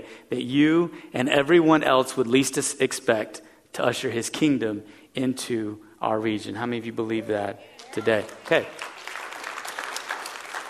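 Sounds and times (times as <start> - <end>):
speech: 0.0 - 8.9
congregation applauding: 7.8 - 10.6.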